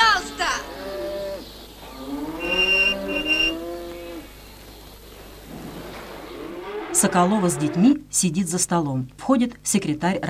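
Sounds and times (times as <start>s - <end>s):
herd of cows mooing: 0.0s - 4.3s, 6.3s - 8.0s
speech: 7.0s - 10.2s.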